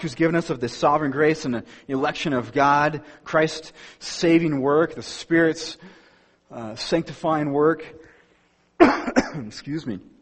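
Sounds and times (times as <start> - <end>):
speech: 0.0 - 8.0, 8.8 - 10.2
harsh coughing fit: 8.8 - 9.5
throat clearing: 8.8 - 9.5.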